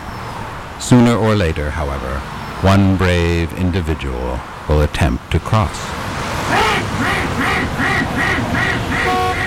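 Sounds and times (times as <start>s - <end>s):
speech: 0.8s - 8.5s
duck quacking in the road on Interstate 90: 6.5s - 9.4s.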